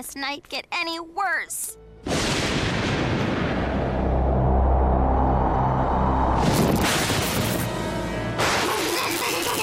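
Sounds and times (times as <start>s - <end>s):
speech: 0.1s - 1.8s
lightning crack: 2.1s - 7.7s
crashing thunder: 2.1s - 8.9s
electric whine: 3.7s - 9.5s.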